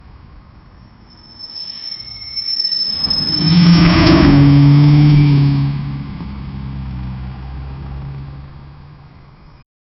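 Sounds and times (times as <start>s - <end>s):
car tires screeching: 1.2s - 8.9s.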